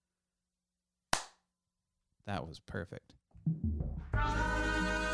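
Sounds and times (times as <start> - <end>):
single loud hand clap: 1.1 - 1.4
speech: 2.3 - 5.0.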